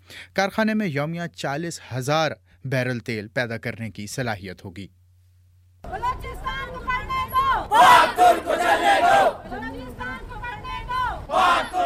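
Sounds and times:
speech: 0.2s - 5.0s
large crowd of students and parents chanting and shouting at a protest: 7.2s - 9.7s, 10.8s - 11.8s.

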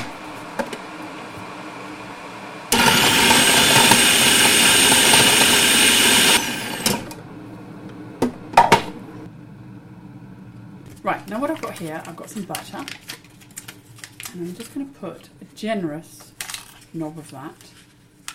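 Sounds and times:
food processor chopping a clove of garlic: 0.0s - 7.3s
speech: 11.8s - 13.1s, 14.3s - 16.3s, 16.9s - 17.7s.

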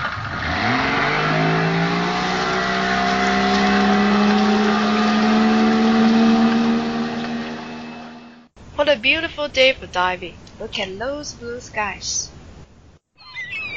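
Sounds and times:
powerful boat engines revving in reverse: 0.0s - 8.5s
speech: 8.9s - 12.3s.

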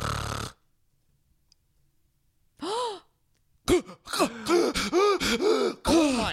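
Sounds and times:
voice imitating heavy snoring of a man with choking gasps: 0.0s - 0.6s
speech: 3.7s - 6.3s.

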